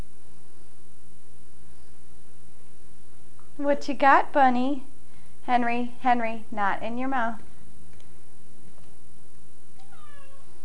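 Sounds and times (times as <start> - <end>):
hiss: 0.0 - 10.6
speech: 3.6 - 4.9, 5.5 - 7.5
faint clicks: 7.9 - 8.1
pet cat meowing: 9.8 - 10.6.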